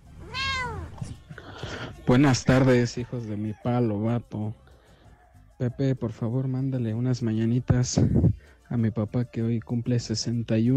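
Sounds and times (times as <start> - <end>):
cat meowing: 0.0 - 1.0
speech: 2.1 - 4.6, 5.6 - 10.7.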